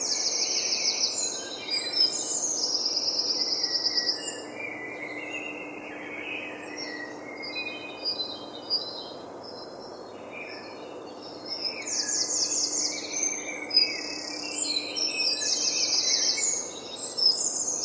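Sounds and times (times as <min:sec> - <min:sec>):
dawn chorus of birds trilling and chirping in London: 0:00.0 - 0:17.8.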